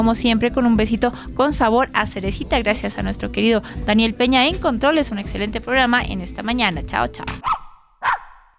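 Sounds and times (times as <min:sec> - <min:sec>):
speech: 0:00.0 - 0:07.6
dog bark: 0:07.4 - 0:08.4.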